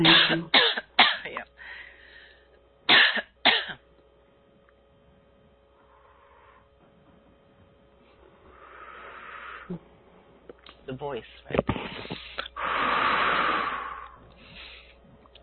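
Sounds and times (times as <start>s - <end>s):
speech: 0.0s - 0.6s, 10.9s - 12.1s
person clearing throat: 0.0s - 1.4s, 2.9s - 3.8s
faint steady hum: 0.0s - 15.4s.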